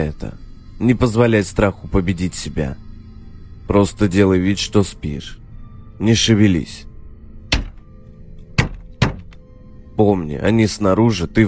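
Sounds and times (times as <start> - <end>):
speech: 0.0 - 2.8, 3.7 - 5.4, 6.0 - 6.9, 10.0 - 11.4
sharp knocks on a window: 7.5 - 7.8, 8.6 - 9.4.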